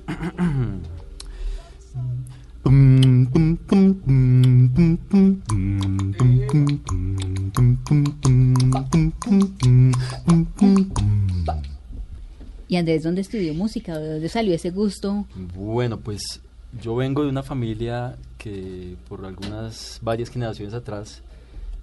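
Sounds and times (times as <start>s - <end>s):
speech: 0.3s - 0.9s, 2.6s - 4.2s, 12.9s - 21.4s
deep male baritone and bass voice imitating a bass line: 2.2s - 11.9s.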